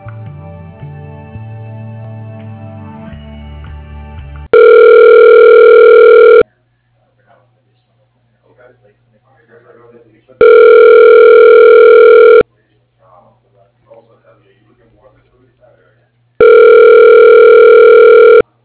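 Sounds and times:
telephone tones as call transferred to voicemail: 0:04.5 - 0:06.4, 0:10.4 - 0:12.4, 0:16.4 - 0:18.4.

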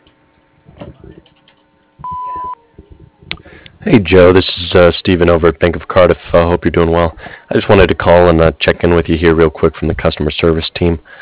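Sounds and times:
answering machine beep: 0:02.0 - 0:02.6
recorded voice: 0:02.7 - 0:11.1
speech: 0:03.9 - 0:11.2.

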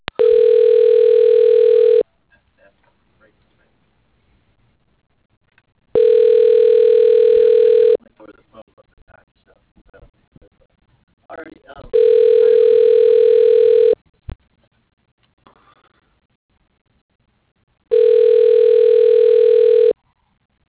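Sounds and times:
telephone ringback tone while a call is transferred: 0:00.2 - 0:02.0, 0:06.0 - 0:08.0, 0:12.0 - 0:14.0, 0:17.9 - 0:20.0.

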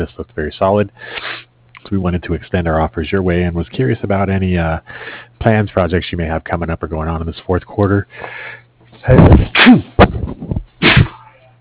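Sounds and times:
speech: 0:00.0 - 0:01.2, 0:01.9 - 0:10.5
faint steady hum: 0:00.0 - 0:11.5
person sneezing: 0:09.3 - 0:10.0, 0:10.8 - 0:11.3.

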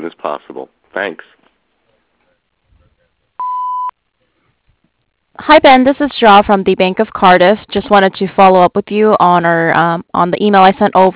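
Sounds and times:
speech: 0:00.2 - 0:01.4, 0:05.4 - 0:11.1
voicemail answering machine beep: 0:03.4 - 0:03.9.

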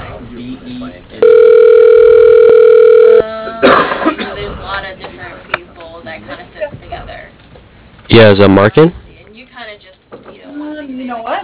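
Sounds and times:
speech: 0:00.6 - 0:01.2, 0:08.2 - 0:09.0
telephone line tone as a call is transferred: 0:01.2 - 0:03.2.

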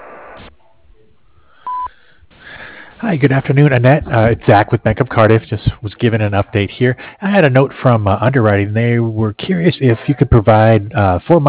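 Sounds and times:
narrow phone-line hiss: 0:00.0 - 0:02.0
answering machine beep: 0:00.6 - 0:01.9
speech: 0:03.0 - 0:11.4.

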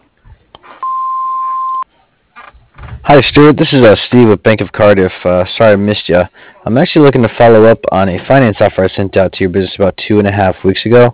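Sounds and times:
answering machine beep: 0:00.8 - 0:01.8
speech: 0:03.1 - 0:11.1.

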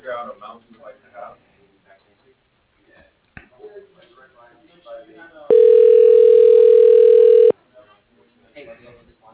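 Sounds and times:
telephone line tone while a call is transferred to voicemail: 0:05.5 - 0:07.5.

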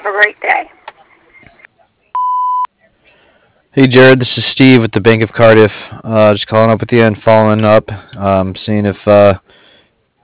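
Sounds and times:
speech: 0:00.1 - 0:00.8, 0:03.7 - 0:09.5
answering machine beep: 0:02.2 - 0:02.7.

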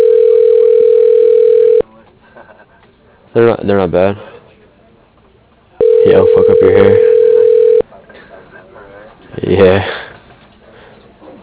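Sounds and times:
telephone dial tone from an automated phone extension directory: 0:00.0 - 0:01.8, 0:05.8 - 0:07.8
speech: 0:03.4 - 0:04.3, 0:06.3 - 0:07.1, 0:09.5 - 0:10.0.

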